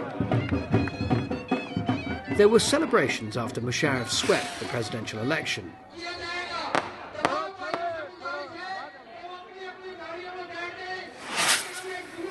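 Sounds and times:
crowd voices and chatter: 0.0s - 12.2s
speech: 2.4s - 6.2s
fireworks going off over a city: 4.2s - 5.1s, 11.1s - 12.2s.

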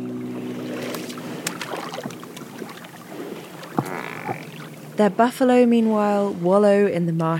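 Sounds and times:
motorboat engine hum speeding across marsh water: 0.0s - 6.9s
wind: 0.0s - 7.3s
splashes and knocks against the motorboat hull: 0.4s - 5.0s
speech: 5.0s - 7.3s.

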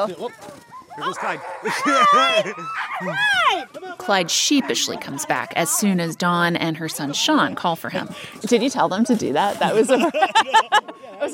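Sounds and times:
harnessed sled dogs barking and yipping: 0.0s - 8.3s
speech: 0.0s - 11.3s
laughter: 1.6s - 6.1s, 9.7s - 11.3s.

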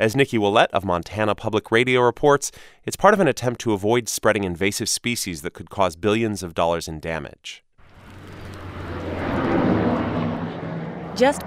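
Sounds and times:
speech: 0.0s - 7.6s, 11.2s - 11.4s
giant boat-shaped airplane engine roaring on a tarmac in northwest Montana: 7.8s - 11.4s.

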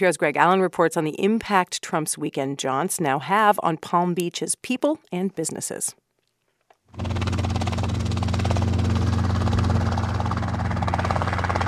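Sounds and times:
speech: 0.0s - 6.0s, 6.9s - 7.2s
helicopter engine during flight training: 6.9s - 11.6s.

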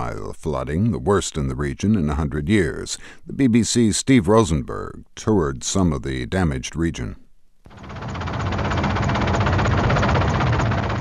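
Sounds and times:
speech: 0.4s - 7.2s
helicopter rotor chopping during a flight over flooded Lensk in Siberia: 7.7s - 10.9s.

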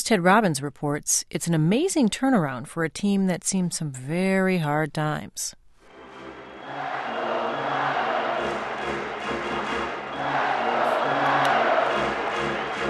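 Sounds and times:
speech: 0.0s - 5.6s
sharp whistles in hockey arena crowd: 5.9s - 11.8s
sellout hockey arena crowd roaring and chanting: 5.9s - 12.8s.

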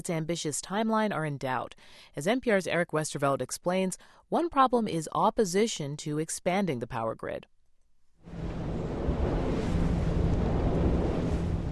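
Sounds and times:
speech: 0.0s - 7.5s
wind gusts buffeting the microphone in the village of Elhoft: 8.2s - 11.7s
rain hissing outdoors in the village of Elhoft: 8.3s - 11.7s.

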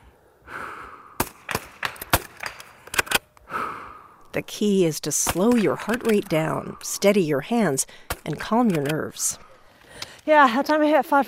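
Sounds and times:
soft breath: 0.0s - 1.2s, 3.4s - 4.4s, 6.6s - 8.2s, 9.4s - 10.3s
22 caliber rifle fired at a target: 1.2s - 3.2s, 5.1s - 9.6s
22 caliber rifle bolt being worked: 1.2s - 3.4s, 5.2s - 6.6s, 8.0s - 10.2s
speech: 4.4s - 9.5s, 10.3s - 11.2s.

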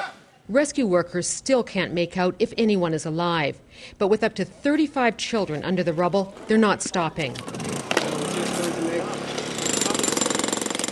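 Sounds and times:
speech: 0.5s - 7.6s
jackhammer pounding holes into concrete roof: 7.4s - 10.8s.

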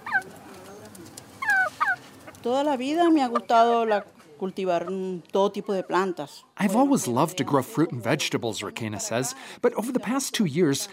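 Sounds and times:
chickens clucking and squawking in a backyard coop: 0.0s - 7.2s
speech: 2.4s - 10.9s.

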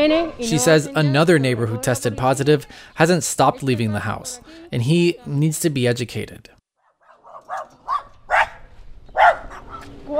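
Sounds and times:
speech: 0.0s - 6.6s, 7.5s - 7.8s
dog barking in sharp yaps: 6.8s - 9.9s.

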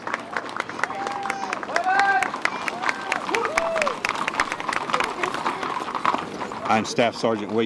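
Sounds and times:
scattered claps: 0.0s - 6.2s
busy outdoor crowd murmuring and chattering at a parade: 0.0s - 7.6s
speech: 6.7s - 7.6s.

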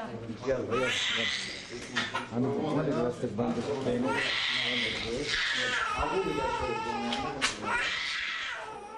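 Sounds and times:
dense busy noise in a hospital: 0.0s - 8.9s
8-month-old baby girl crying in a hospital bed: 0.7s - 2.3s, 4.0s - 8.9s.

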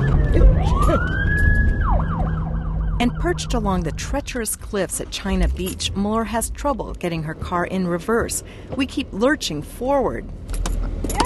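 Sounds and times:
speeding police car siren wailing near Golden Gate Park: 0.0s - 5.0s
steady rumble of road traffic: 0.0s - 11.2s
speech: 3.2s - 11.2s.

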